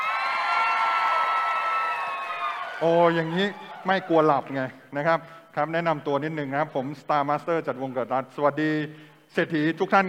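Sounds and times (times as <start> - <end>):
large audience screaming and cheering: 0.0 - 4.6
speech: 2.8 - 10.0.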